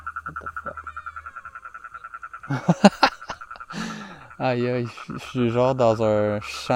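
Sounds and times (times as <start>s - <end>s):
frogs croaking in chorus outdoors in a field: 0.0s - 6.7s
speech: 0.2s - 0.5s, 2.5s - 3.1s, 4.4s - 6.7s
laughter: 2.5s - 5.5s.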